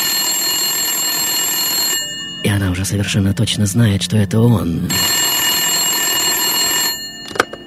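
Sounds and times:
telephone ringing with a bright buzzing bell in a young woman's home: 0:00.0 - 0:07.6
speech: 0:02.5 - 0:05.2
clicks of a telephone handset being picked up: 0:07.2 - 0:07.6.

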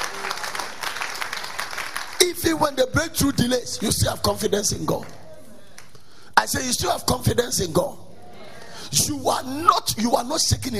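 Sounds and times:
congregation clapping and applauding: 0:00.0 - 0:06.0
speech: 0:02.2 - 0:05.2, 0:06.4 - 0:08.0, 0:08.9 - 0:10.7.

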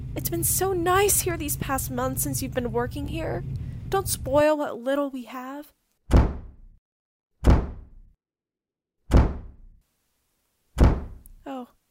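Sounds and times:
speech: 0:00.2 - 0:06.2
front door banging in the wind: 0:06.1 - 0:06.7, 0:07.4 - 0:08.0, 0:09.1 - 0:09.7, 0:10.8 - 0:11.4.

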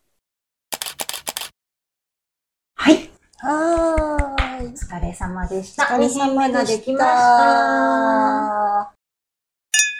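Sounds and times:
camera shutter clicks taking photos of cream cheese snack dishes: 0:00.7 - 0:01.6
speech: 0:02.9 - 0:04.0, 0:04.6 - 0:08.9.

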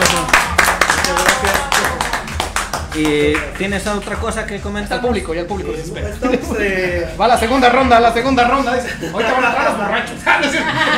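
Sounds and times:
cheering: 0:00.0 - 0:02.3
crowd applauding with dense clapping: 0:00.0 - 0:04.2
speech: 0:03.0 - 0:10.9
laughter: 0:05.9 - 0:07.6, 0:08.4 - 0:10.9.

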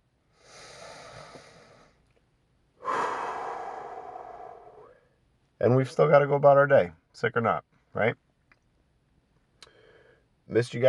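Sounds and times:
sick person taking a deep breath: 0:00.3 - 0:02.0, 0:02.8 - 0:05.2, 0:09.6 - 0:10.3
speech: 0:05.6 - 0:08.2, 0:10.6 - 0:10.8.

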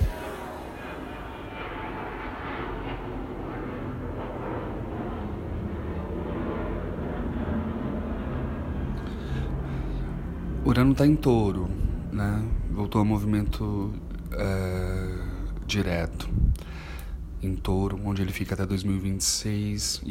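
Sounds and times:
airplane passing overhead: 0:00.0 - 0:20.0
speech: 0:10.7 - 0:16.7, 0:17.4 - 0:20.0.

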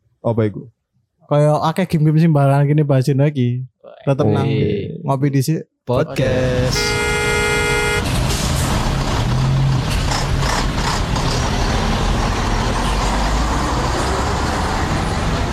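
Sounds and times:
speech: 0:00.2 - 0:07.0
busy road wash: 0:05.9 - 0:15.5
dense traffic engines rumbling: 0:05.9 - 0:15.5
car horn blaring a steady tone: 0:06.2 - 0:08.2.

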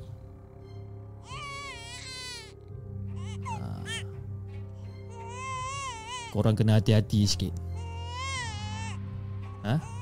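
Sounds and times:
baby crying: 0:01.2 - 0:04.2, 0:04.9 - 0:06.5, 0:07.7 - 0:10.0
speech: 0:06.3 - 0:07.7, 0:09.7 - 0:09.9.

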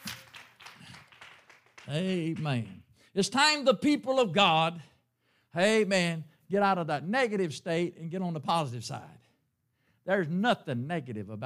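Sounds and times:
church audience clapping hands in praise: 0:00.0 - 0:02.9
speech: 0:01.9 - 0:04.9, 0:05.5 - 0:09.2, 0:10.1 - 0:11.4.

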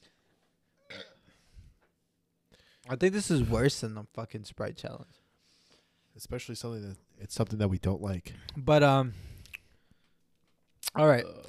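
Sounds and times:
person burping into the microphone: 0:00.8 - 0:01.2
speech: 0:02.9 - 0:05.2, 0:06.2 - 0:09.3, 0:11.0 - 0:11.4.

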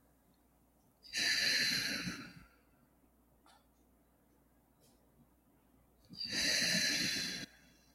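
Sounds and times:
deep breaths in through the nose and out through the mouth during guided meditation: 0:01.0 - 0:02.8, 0:06.1 - 0:07.9.

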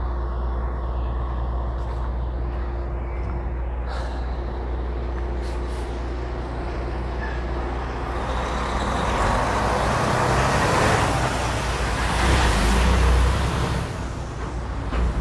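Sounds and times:
heavy trucks roaring at a truck stop: 0:00.0 - 0:15.2
passing traffic at a truck stop: 0:00.0 - 0:15.2.

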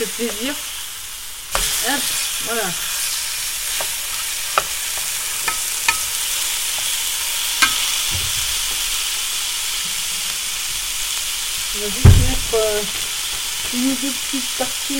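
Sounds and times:
speech: 0:00.0 - 0:00.8, 0:01.8 - 0:03.0, 0:11.8 - 0:13.0, 0:13.7 - 0:14.9
food sizzling and crackling in a frying pan: 0:00.0 - 0:14.9
sharp pops and crackles of food frying in a pan: 0:03.3 - 0:13.9.

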